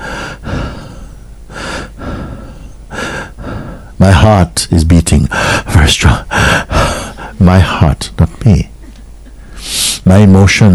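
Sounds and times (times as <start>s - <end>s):
heavy breathing with deep noisy inhales and exhales: 0.0s - 4.0s, 5.3s - 7.4s
speech: 4.0s - 6.7s, 7.4s - 8.7s, 9.6s - 10.7s.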